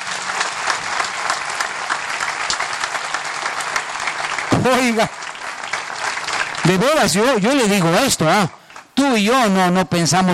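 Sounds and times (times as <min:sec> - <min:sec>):
audience applause: 0:00.0 - 0:09.8
speech: 0:04.6 - 0:05.2, 0:06.7 - 0:10.3.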